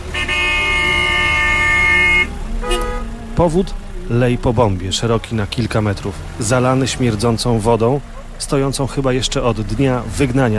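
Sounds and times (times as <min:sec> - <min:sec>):
car horns honking on a busy main street: 0:00.0 - 0:03.3
car engine rumble: 0:00.0 - 0:10.5
speech: 0:03.4 - 0:10.5.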